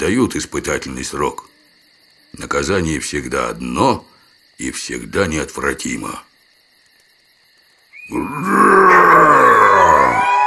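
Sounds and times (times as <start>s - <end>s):
speech: 0.0s - 1.6s, 2.3s - 6.3s, 8.1s - 9.0s
man letting out a rough throaty roar: 8.1s - 10.4s.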